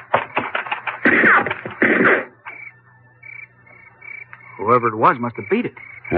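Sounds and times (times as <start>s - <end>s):
volley of sharp gunshots in the countryside: 0.1s - 2.4s
speech: 4.7s - 6.1s.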